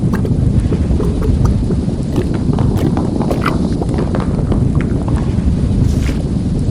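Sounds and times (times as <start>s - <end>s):
gurgling mudslide: 0.1s - 6.6s.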